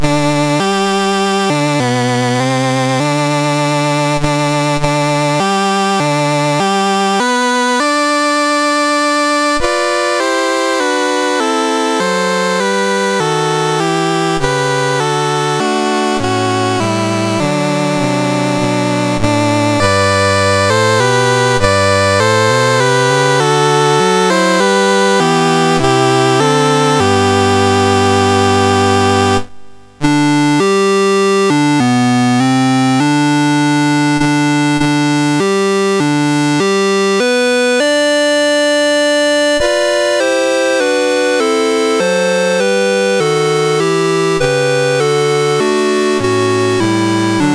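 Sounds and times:
chiptune national anthem on a MOS6581R2 sound chip: 0.0s - 47.5s.

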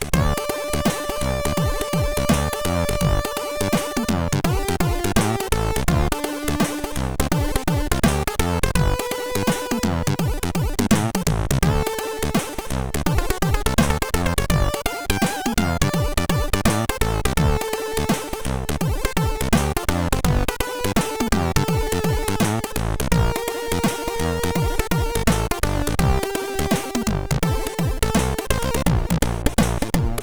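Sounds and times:
chiptune synthesizer sound from SID chip: 0.2s - 30.1s.

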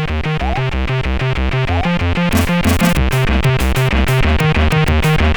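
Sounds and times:
techno music: 0.2s - 5.3s.

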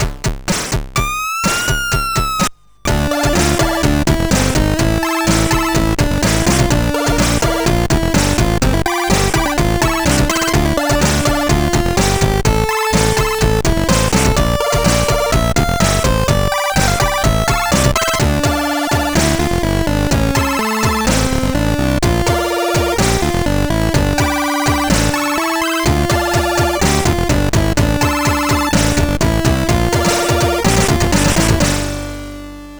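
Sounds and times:
chiptune music on a SID 8580R5 chip: 1.1s - 32.7s.

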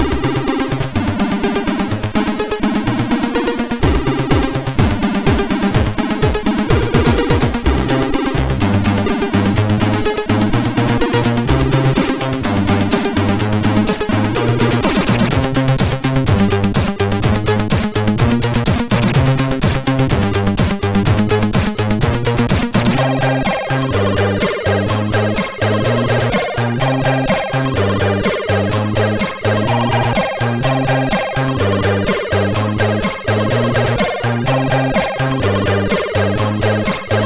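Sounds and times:
MOS6581R4 sound chip synth sound: 0.0s - 37.2s.

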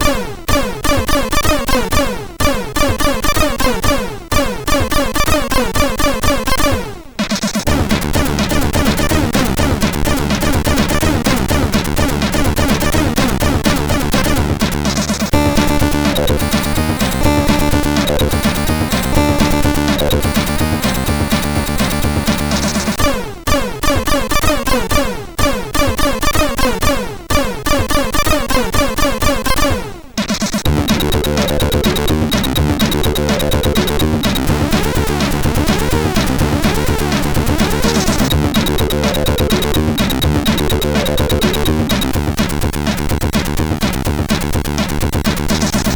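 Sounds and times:
easy techno on a MOS 6581 sound chip: 0.0s - 45.9s.

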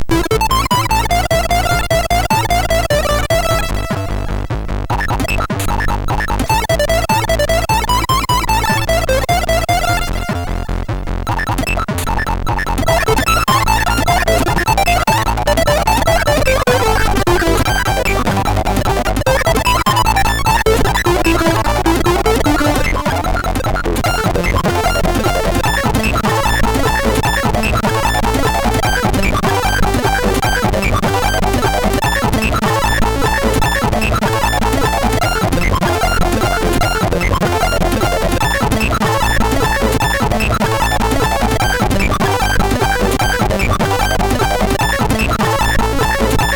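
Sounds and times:
MOS 6581R4 sound chip synth riffing: 0.0s - 46.5s.

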